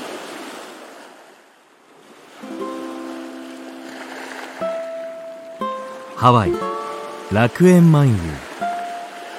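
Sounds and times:
ocean waves washing onto a sandy beach: 0.0 - 9.3
sustained musical tones: 2.4 - 9.3
speech: 6.2 - 6.7, 7.3 - 8.5.

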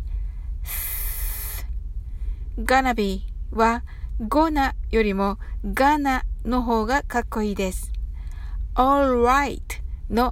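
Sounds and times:
voiceless English th breath forced out between tongue and teeth: 0.7 - 1.7
speech: 2.6 - 7.9, 8.8 - 10.3.

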